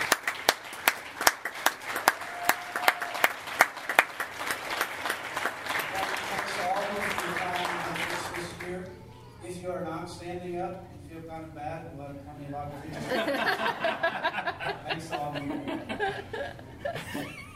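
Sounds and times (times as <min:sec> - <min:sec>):
church audience applauding volunteers: 0:00.0 - 0:08.8
speech: 0:10.8 - 0:13.2
laughter: 0:12.8 - 0:17.5.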